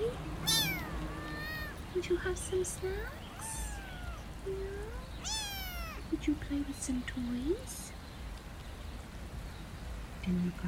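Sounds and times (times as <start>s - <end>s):
faint low hum: 0.0s - 10.6s
cat meowing: 0.4s - 1.9s, 3.0s - 6.1s
speech: 2.0s - 3.2s, 4.4s - 5.1s, 6.1s - 7.8s, 10.3s - 10.6s.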